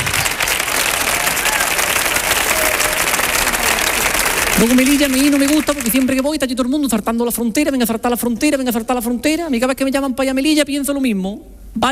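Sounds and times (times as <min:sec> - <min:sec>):
audience applause: 0:00.0 - 0:06.3
speech: 0:04.6 - 0:11.9.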